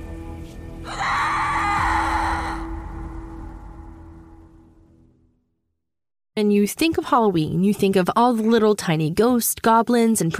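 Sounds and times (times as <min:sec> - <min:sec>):
loud piercing blood-curdling scream: 0:00.8 - 0:03.8
speech: 0:06.4 - 0:10.3.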